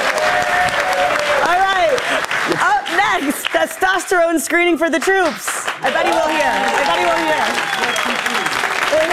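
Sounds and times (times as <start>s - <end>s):
crowd cheering with whoops and excited shouts: 0.0s - 3.7s, 5.8s - 9.1s
crowd clapping: 0.0s - 9.1s
speech: 3.7s - 9.1s.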